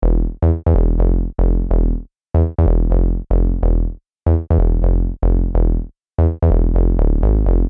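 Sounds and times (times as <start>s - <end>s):
Serum bass: 0.0s - 7.6s.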